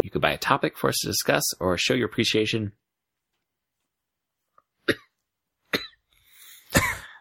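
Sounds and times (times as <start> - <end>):
speech: 0.1 - 2.8
sharp coughs: 4.8 - 6.0, 6.6 - 7.1.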